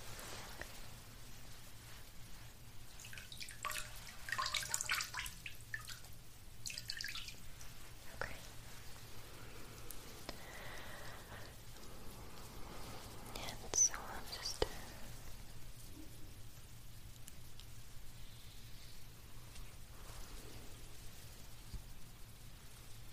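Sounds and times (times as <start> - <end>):
low steady hum: 0.0 - 23.1
water dripping from cotton rounds: 2.9 - 8.4.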